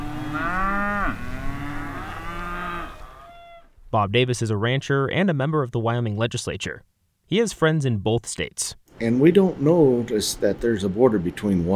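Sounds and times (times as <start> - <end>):
cattle mooing in the agricultural valley of the Little Snake River: 0.0 - 3.7
speech: 3.9 - 11.7.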